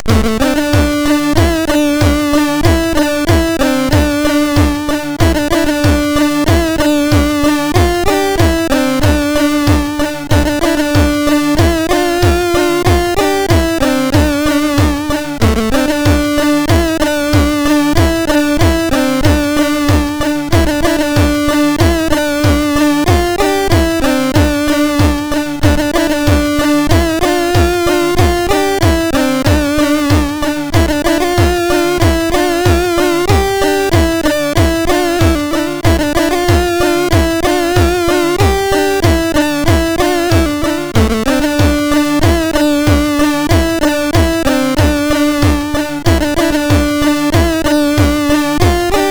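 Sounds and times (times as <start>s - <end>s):
SID MOS6581R2 sound chip synthesizer: 0.0s - 49.0s.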